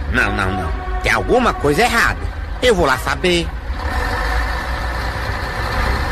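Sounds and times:
large bus engine idling: 0.0 - 6.0
speech: 0.1 - 3.9.

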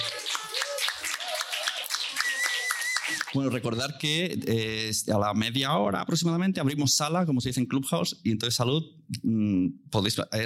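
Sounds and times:
audience clapping: 0.0 - 3.4
speech: 3.3 - 10.4.

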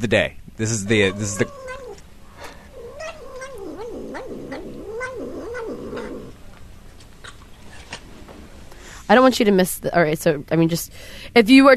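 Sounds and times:
speech: 0.0 - 1.6, 9.1 - 11.7
cat making num num vocalisations while eating sour cream: 0.9 - 6.4.

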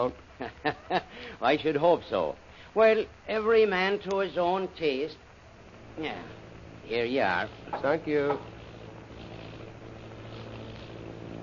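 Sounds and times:
speech: 0.0 - 5.2, 6.0 - 8.6
airplane engine droning with a low throbbing rumble: 4.3 - 11.4.

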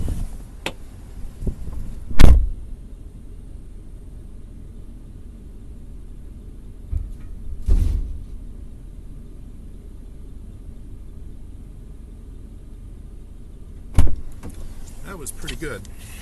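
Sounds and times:
low outdoor rumble: 0.0 - 16.2
heavy metal trailer hitch assembly clunking as it is loaded as scrap: 6.8 - 8.7, 13.9 - 14.7
speech: 15.2 - 16.2.

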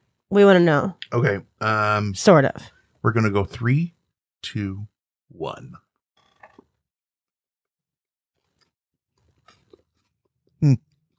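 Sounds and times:
speech: 0.3 - 5.8, 10.6 - 10.8
crunchy chewing of peanut butter onion sandwich: 8.4 - 10.2.

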